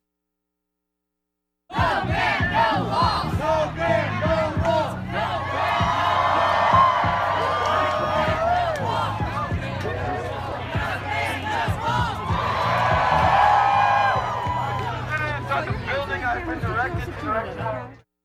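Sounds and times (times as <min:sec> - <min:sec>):
crowd of protesters chanting in unison: 0:01.7 - 0:15.9
crowd of protesters cheering: 0:01.7 - 0:18.0.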